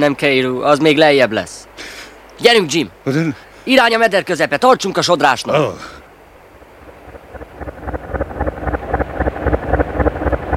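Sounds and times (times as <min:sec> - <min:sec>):
speech: 0:00.0 - 0:01.7, 0:02.4 - 0:06.0
deep rumble: 0:06.7 - 0:10.5
boat engine or paddles churning on a river: 0:06.8 - 0:10.5.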